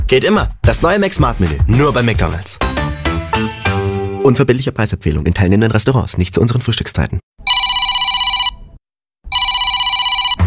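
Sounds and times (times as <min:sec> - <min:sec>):
speech: 0:00.1 - 0:02.8, 0:04.2 - 0:07.2
telephone ringing with a bright trilling bell tone: 0:07.4 - 0:08.7, 0:09.3 - 0:10.4.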